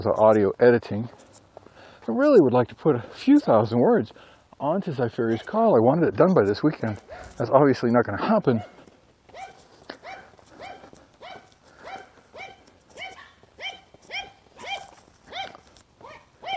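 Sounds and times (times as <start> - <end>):
speech: 0.0 - 1.3, 2.1 - 8.8
small yappy dog barking: 5.3 - 5.6, 8.6 - 16.5.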